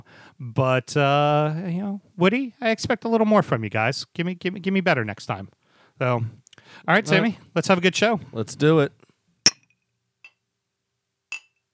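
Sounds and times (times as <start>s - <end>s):
speech: 0.3s - 9.0s
glasses clinking in a toast: 11.3s - 11.6s.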